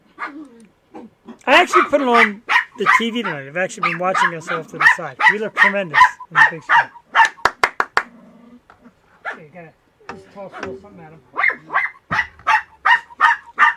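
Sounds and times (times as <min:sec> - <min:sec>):
dogs barking: 0:00.1 - 0:07.6, 0:09.2 - 0:09.5, 0:10.4 - 0:13.7
speech: 0:00.3 - 0:07.0, 0:10.4 - 0:11.8.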